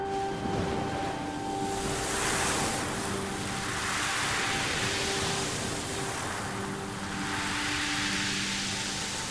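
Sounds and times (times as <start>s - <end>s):
small waves breaking against a boat's bow: 0.1s - 9.2s
spray hissing: 2.7s - 9.2s.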